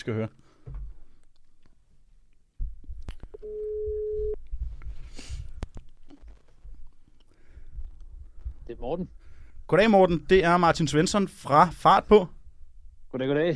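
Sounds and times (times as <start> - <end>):
speech: 0.0 - 0.8, 8.7 - 12.4, 13.1 - 13.5
telephone ringing tone while calling a prize winner: 3.4 - 4.4.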